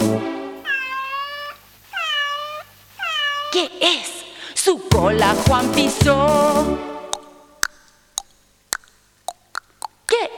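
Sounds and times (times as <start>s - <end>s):
cat meowing: 0.6s - 3.8s
speech: 3.5s - 6.9s.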